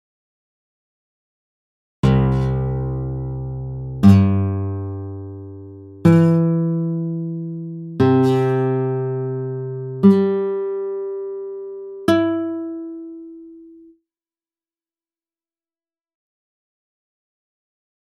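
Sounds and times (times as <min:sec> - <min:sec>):
guitar in open C tuning: 0:02.0 - 0:13.9.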